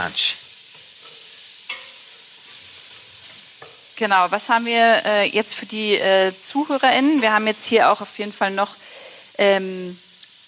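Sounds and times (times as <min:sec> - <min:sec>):
speech: 0:00.0 - 0:00.4, 0:04.0 - 0:08.8, 0:09.4 - 0:10.0
coarsely chopped carrots sizzling and frying in a pan: 0:00.0 - 0:10.4
spoon scraping a pan: 0:00.6 - 0:04.0.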